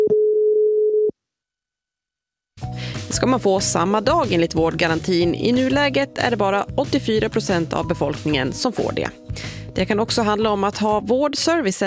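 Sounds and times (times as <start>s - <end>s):
telephone ringing tone while calling a health centre: 0.0s - 1.1s
speech: 3.1s - 11.8s.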